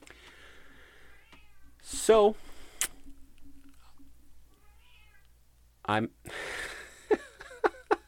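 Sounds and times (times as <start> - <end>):
cat meowing: 1.1 - 1.8, 4.5 - 5.3
speech: 2.1 - 2.6, 5.9 - 6.5.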